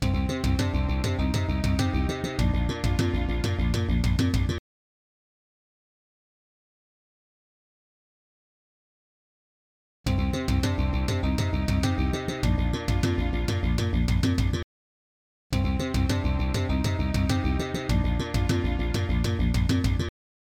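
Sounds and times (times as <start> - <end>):
soundcard test sound: 0.0 - 4.6, 10.1 - 14.6, 15.6 - 20.1.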